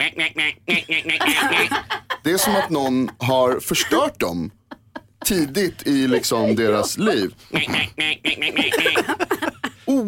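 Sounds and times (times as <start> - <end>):
duck quacking: 0.0 - 1.7, 7.5 - 9.1
speech: 0.0 - 1.7, 2.4 - 4.6, 5.2 - 9.3
laughter: 0.7 - 3.3, 4.6 - 9.8.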